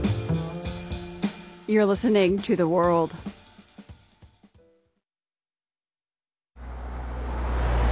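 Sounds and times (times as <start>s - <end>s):
speech: 1.7s - 3.4s
car road rumble and tire noise on an Alaska highway: 6.6s - 7.9s.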